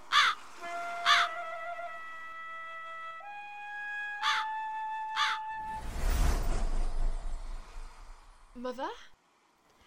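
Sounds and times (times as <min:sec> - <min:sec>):
crow cawing: 0:00.1 - 0:00.4, 0:01.0 - 0:01.3, 0:04.2 - 0:04.5, 0:05.1 - 0:05.4
broad rushing noise: 0:05.6 - 0:08.9
speech: 0:08.7 - 0:09.1.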